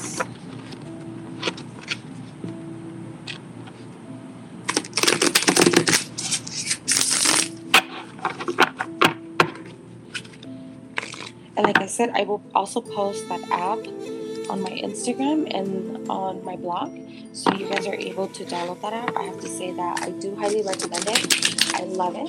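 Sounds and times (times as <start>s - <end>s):
deck of cards being shuffled: 4.7s - 8.9s, 9.5s - 11.4s, 20.0s - 22.0s
speech: 12.0s - 17.0s, 17.7s - 22.2s.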